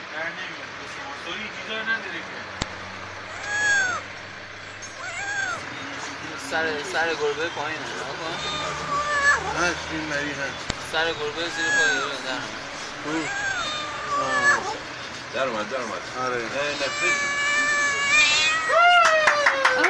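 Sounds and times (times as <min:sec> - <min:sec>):
people talking: 0:00.0 - 0:02.5, 0:05.4 - 0:14.8, 0:15.4 - 0:18.2
low traffic noise: 0:00.0 - 0:19.8
trapped kitten meowing: 0:03.3 - 0:04.0, 0:05.0 - 0:05.6, 0:08.4 - 0:09.6, 0:11.5 - 0:12.1, 0:13.2 - 0:14.8, 0:16.6 - 0:18.8.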